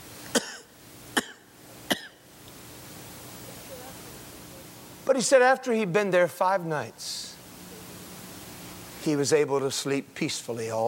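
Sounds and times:
person imitating harsh hacking tubercular coughs of rickshaw operators: 0:00.3 - 0:02.2
speech: 0:05.1 - 0:07.3, 0:09.0 - 0:10.8.

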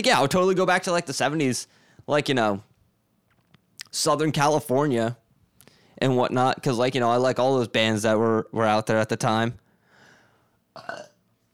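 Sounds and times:
speech: 0:00.0 - 0:02.7, 0:03.9 - 0:05.2, 0:06.0 - 0:09.6, 0:10.8 - 0:11.1
loud guttural burp: 0:10.8 - 0:11.2.

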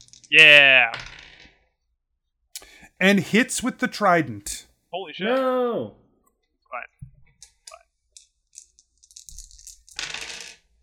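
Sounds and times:
large handful of dice clattering across a hard surface: 0:00.0 - 0:00.3, 0:00.9 - 0:01.6, 0:08.2 - 0:10.7
speech: 0:00.3 - 0:01.1, 0:03.0 - 0:06.0.

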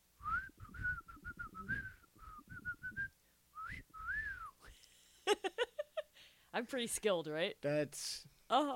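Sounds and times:
person whistling a soap commercial jingle: 0:00.2 - 0:04.6
speech: 0:06.5 - 0:08.7.

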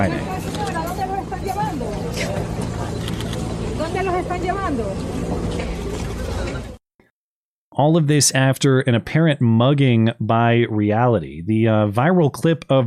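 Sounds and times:
speech: 0:00.0 - 0:00.3, 0:04.0 - 0:05.8, 0:07.8 - 0:12.8
bus pulling away with engine drone: 0:00.0 - 0:06.8
people chattering: 0:00.0 - 0:06.8.

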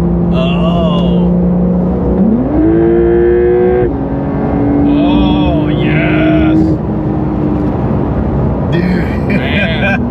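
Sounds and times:
sports car engine with open exhaust accelerating: 0:00.0 - 0:10.0.

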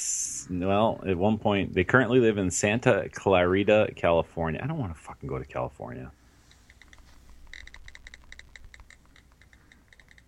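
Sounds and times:
speech: 0:00.4 - 0:06.2
rapid computer keyboard typing during an internet search: 0:06.7 - 0:10.2.

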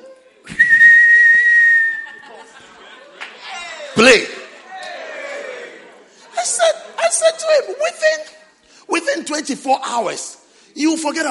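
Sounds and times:
loud steady whistle blast: 0:00.5 - 0:02.1
laughter: 0:01.8 - 0:07.4
speech: 0:04.0 - 0:04.3, 0:09.9 - 0:11.3.

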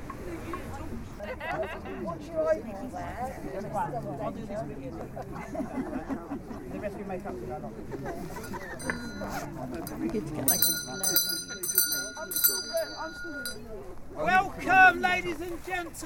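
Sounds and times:
murmur of a crowd chatting outdoors: 0:00.0 - 0:16.0
speech: 0:01.5 - 0:11.5, 0:12.3 - 0:16.0
bell ringing with bright sustained tones: 0:08.4 - 0:13.8.

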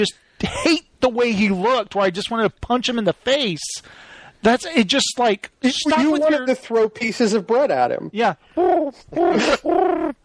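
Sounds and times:
speech: 0:00.0 - 0:10.2
voice imitating pigeon cooing: 0:08.6 - 0:10.2.

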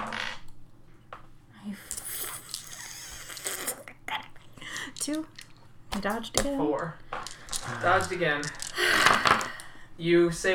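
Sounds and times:
dice clattering across a hard table: 0:01.9 - 0:02.8, 0:04.9 - 0:09.7
speech: 0:05.0 - 0:05.4, 0:06.0 - 0:07.0, 0:07.6 - 0:10.5.

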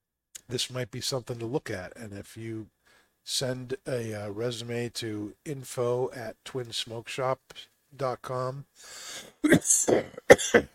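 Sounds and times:
speech: 0:00.5 - 0:10.7
person coughing: 0:09.2 - 0:10.7.

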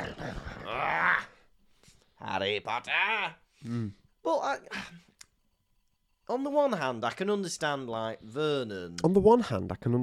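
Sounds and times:
person imitating an angry growl: 0:00.0 - 0:01.4
speech: 0:02.4 - 0:05.0, 0:06.3 - 0:10.0.

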